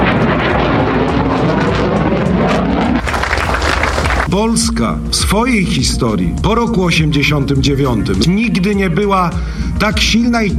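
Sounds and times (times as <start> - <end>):
F-35 fighter jet roaring overhead: 0.0 - 4.3
speech: 4.3 - 10.5.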